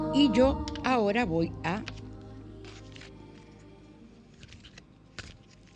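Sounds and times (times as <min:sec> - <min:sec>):
speech: 0:00.2 - 0:02.0
deck of cards shuffling: 0:01.8 - 0:03.7, 0:04.3 - 0:05.7.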